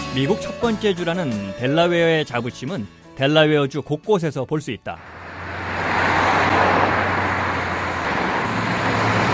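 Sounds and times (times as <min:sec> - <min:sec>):
speech: 0:00.2 - 0:05.2
cars driving along a street: 0:05.0 - 0:09.3.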